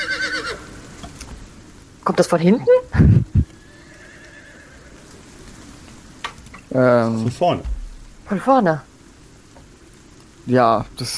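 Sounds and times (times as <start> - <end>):
carriage horse neighing: 0.0 - 0.7, 3.1 - 5.2
faint even noise: 0.0 - 11.1
speech: 2.1 - 3.2, 6.8 - 8.9, 10.4 - 11.1
loud thumps: 7.6 - 8.3.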